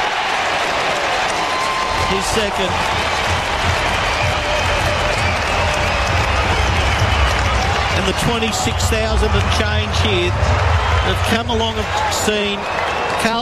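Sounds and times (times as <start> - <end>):
big football stadium crowd roaring and cheering after a goal: 0.0 - 13.3
speech: 2.1 - 3.0, 8.0 - 13.3
commentator speaking: 7.9 - 10.4, 11.0 - 12.6.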